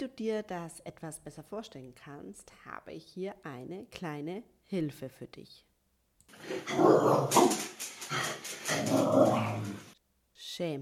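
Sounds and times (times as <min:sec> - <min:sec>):
speech: 0:00.0 - 0:05.7, 0:06.4 - 0:09.8, 0:10.6 - 0:10.7
dog on a leash growling and barking: 0:06.4 - 0:10.0.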